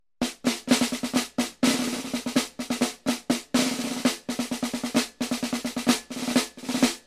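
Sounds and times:
drums playing a military march: 0.2s - 7.0s.

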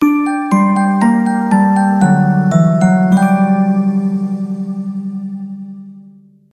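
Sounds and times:
musical ending: 0.0s - 6.3s.

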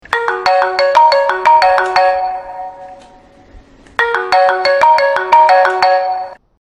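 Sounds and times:
iPhone 3GS default ringtone: 0.0s - 6.5s.

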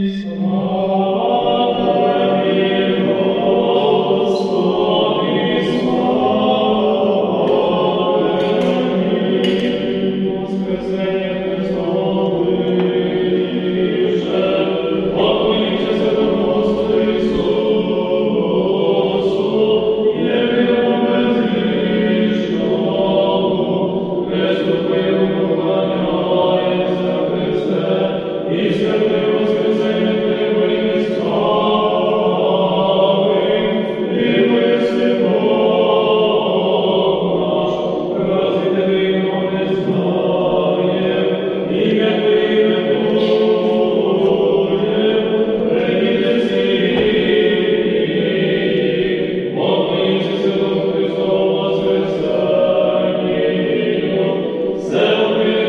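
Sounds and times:
church choir singing: 0.0s - 55.6s.

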